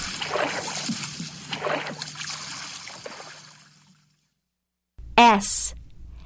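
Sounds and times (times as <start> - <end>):
splashing through puddles: 0.0 - 3.8
speech: 5.4 - 5.8.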